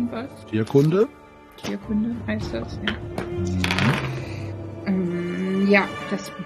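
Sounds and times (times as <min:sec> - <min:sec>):
speech: 0:00.1 - 0:04.2, 0:05.6 - 0:06.4
dice rolled for an animal-lore check clattering across a hard surface: 0:03.6 - 0:04.2.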